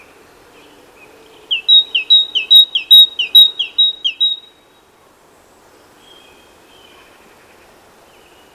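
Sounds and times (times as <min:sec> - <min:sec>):
great tit Parus major singing: 0:01.3 - 0:04.5.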